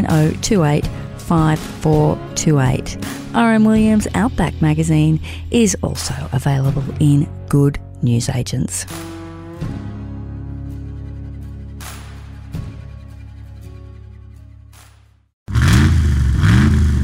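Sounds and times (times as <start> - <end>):
speech: 0.1 - 9.8
Hemi V8 engine of a Ram pickup truck revving: 15.5 - 17.0.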